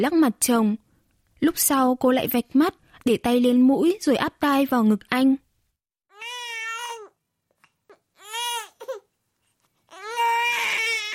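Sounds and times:
speech: 0:00.0 - 0:00.8, 0:01.4 - 0:05.4
small child crying at night: 0:06.1 - 0:07.2, 0:08.1 - 0:09.1, 0:09.9 - 0:11.1.

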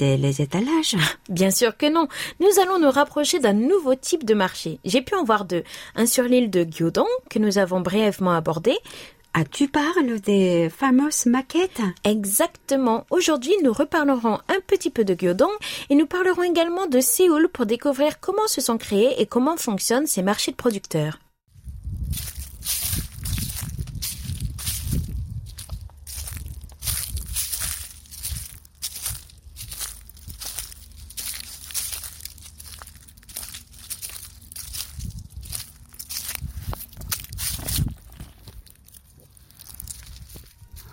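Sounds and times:
speech: 0:00.0 - 0:21.2
footsteps crunching through dry autumn leaves: 0:21.5 - 0:40.9.

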